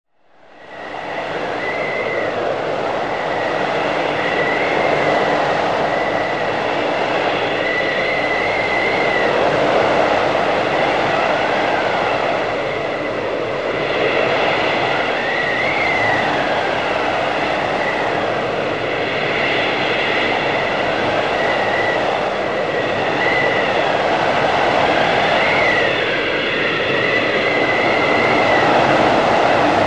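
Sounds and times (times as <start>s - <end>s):
blizzard: 0.2s - 29.8s.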